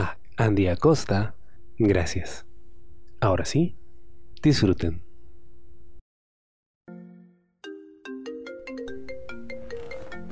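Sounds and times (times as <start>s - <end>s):
speech: 0.0s - 2.5s, 3.2s - 3.8s, 4.4s - 5.0s
mobile phone ringing with a bright melodic ringtone for an incoming call: 7.6s - 10.3s.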